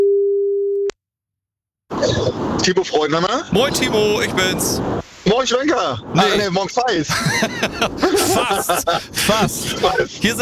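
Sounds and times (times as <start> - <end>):
telephone line tone while placing an outgoing call: 0.0 - 0.9
speech: 2.6 - 10.4
laughter: 7.1 - 10.4.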